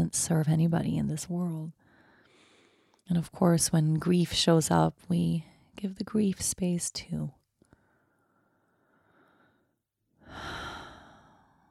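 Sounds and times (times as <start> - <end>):
speech: 0.1 - 1.8, 3.1 - 7.4
slow deep breathing during a meditation practice: 1.8 - 3.0, 7.8 - 11.6.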